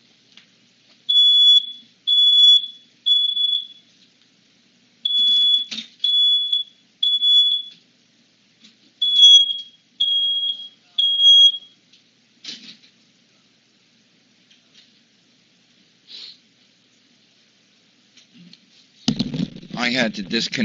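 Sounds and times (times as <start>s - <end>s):
smoke detector alarm beeping in shrill high-pitched tones: 1.1s - 3.9s, 5.0s - 7.8s, 9.0s - 11.8s
speech: 19.9s - 20.6s.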